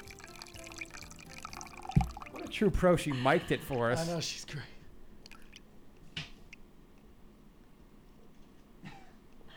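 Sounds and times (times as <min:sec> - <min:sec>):
wet splash of urine: 0:00.0 - 0:02.5
urine dripping from a woman peeing: 0:00.0 - 0:02.6
speech: 0:02.5 - 0:04.7.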